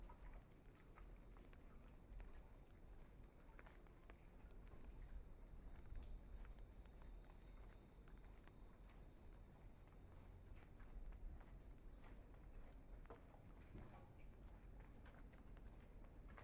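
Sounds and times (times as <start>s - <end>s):
footsteps in wooden clogs on wet pavement: 0.1s - 16.4s
faint high beeping: 0.6s - 8.0s.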